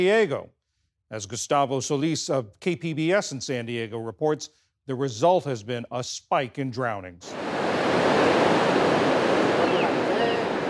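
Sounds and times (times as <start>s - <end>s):
speech: 0.0s - 8.4s
ocean waves crashing on a beach: 7.3s - 10.6s.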